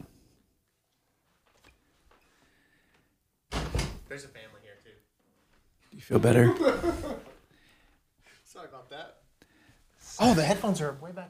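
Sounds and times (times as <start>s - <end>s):
studio door shutting with a loud thud: 3.5s - 4.1s
speech: 4.1s - 5.1s, 5.9s - 7.3s, 8.5s - 9.2s, 10.0s - 11.2s
laughter: 6.2s - 7.5s.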